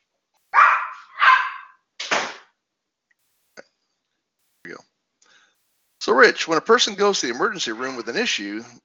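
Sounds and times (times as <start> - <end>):
dogs barking excitedly: 0.5 - 1.8
speech: 6.0 - 8.8.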